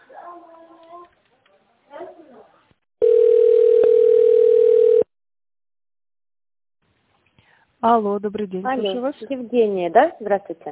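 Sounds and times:
telephone ringing tone while a call is transferred: 3.0s - 5.1s
speech: 7.8s - 10.6s.

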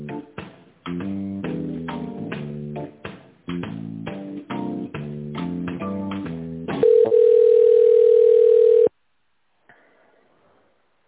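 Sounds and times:
steady loud telephone line tone: 6.8s - 9.0s.

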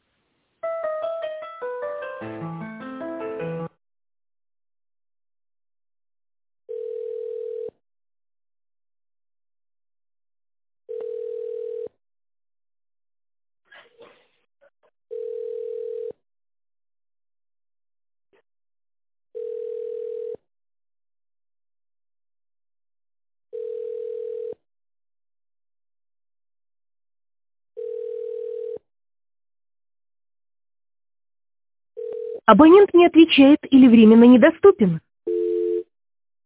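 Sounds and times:
speech: 2.2s - 2.5s, 32.5s - 35.0s
telephone ringback tone while a call is being put through: 6.7s - 7.7s, 10.9s - 11.9s, 15.1s - 16.1s, 19.4s - 20.4s, 23.5s - 24.6s, 27.8s - 28.8s, 32.0s - 32.5s, 35.3s - 35.9s.

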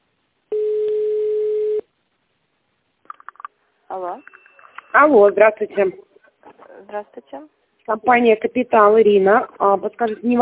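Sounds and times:
telephone ringback tone during a call transfer to an internal extension: 0.5s - 1.8s
speech: 3.9s - 6.1s, 6.9s - 10.3s.

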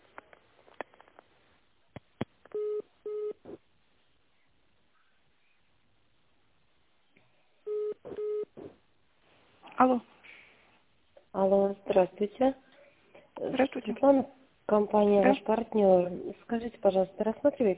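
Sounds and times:
telephone beeps while a call is being connected: 7.7s - 8.5s
speech: 9.8s - 10.1s, 11.5s - 12.7s, 13.4s - 17.7s.

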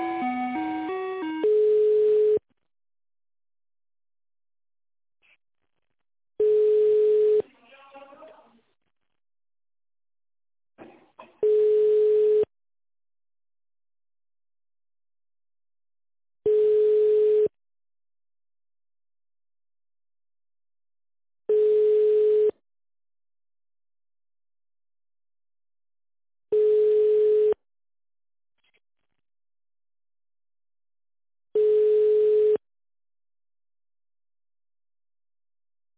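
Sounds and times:
telephone line beeps during call transfer to an extension: 0.1s - 2.4s, 6.4s - 7.4s, 11.4s - 12.5s, 16.5s - 17.5s, 21.5s - 22.5s, 26.5s - 27.6s, 31.6s - 32.6s.

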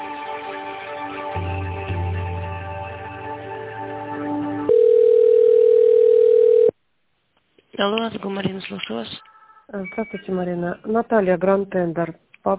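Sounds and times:
buzzing layered telephone line sound during call transfer: 4.7s - 6.7s
speech: 7.8s - 12.5s.

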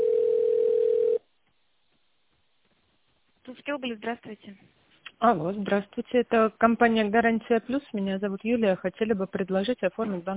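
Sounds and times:
steady single-pitch telephone tone while a call is transferred: 0.0s - 1.2s
speech: 3.6s - 10.3s.

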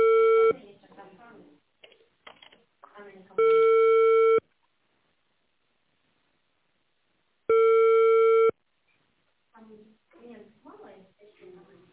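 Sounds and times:
telephone line beeps while a call is being placed: 0.0s - 0.5s, 3.4s - 4.4s, 7.5s - 8.5s
people talking: 0.5s - 1.6s, 2.8s - 3.5s, 9.6s - 11.9s.

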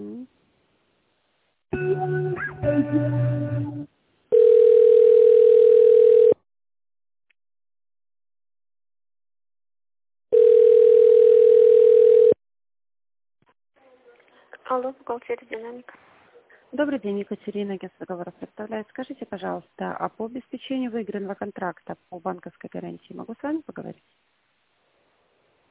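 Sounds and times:
speech: 2.7s - 3.5s, 14.9s - 16.1s, 16.7s - 24.2s
telephone line tones while a call is transferred: 4.3s - 6.4s, 10.3s - 12.4s.

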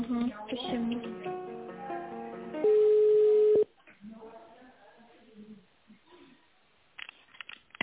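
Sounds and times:
telephone line tones while a call is transferred: 2.6s - 3.7s.

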